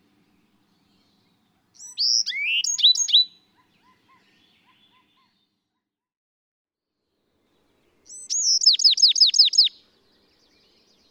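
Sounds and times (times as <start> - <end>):
Bewick's wren song: 0.2 - 5.4, 7.8 - 11.1.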